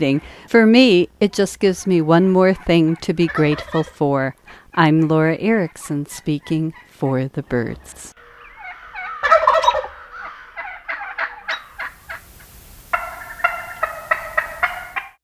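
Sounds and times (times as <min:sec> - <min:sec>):
speech: 0:00.0 - 0:08.2
turkeys gobbling: 0:03.3 - 0:03.9, 0:08.6 - 0:15.2.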